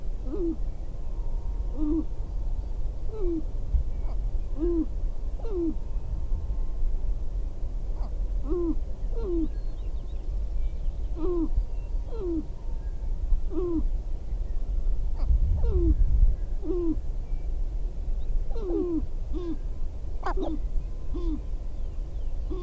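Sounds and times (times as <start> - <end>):
low rumbling background: 0.0 - 22.6
sharp-tailed grouse cooing: 0.2 - 2.2, 3.1 - 5.9, 8.0 - 9.6, 11.1 - 12.6, 13.4 - 13.9, 15.2 - 16.0, 16.6 - 17.0, 18.5 - 21.5, 22.5 - 22.6.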